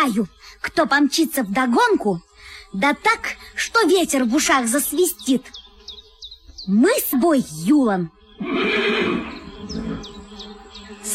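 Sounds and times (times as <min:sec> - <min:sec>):
speech: 0:00.0 - 0:05.6, 0:06.6 - 0:09.4
bridled horse neighing: 0:08.4 - 0:10.2.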